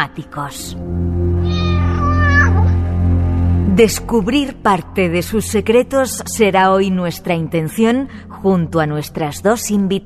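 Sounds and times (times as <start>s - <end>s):
speech: 0.0s - 1.2s, 3.8s - 10.0s
steady low hum: 0.7s - 6.6s
cat meowing: 1.4s - 2.8s.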